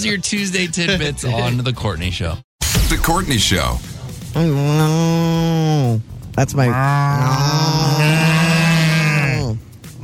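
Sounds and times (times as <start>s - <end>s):
speech: 0.0s - 8.4s
person imitating a cow mooing at a town and country fair: 4.3s - 6.0s, 6.6s - 9.6s.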